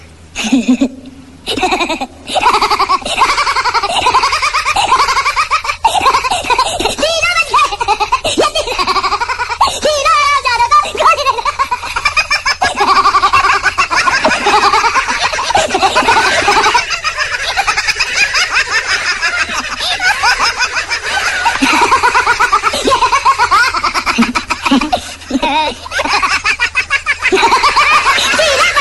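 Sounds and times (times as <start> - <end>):
child laughing ringtone: 0.4 - 28.7.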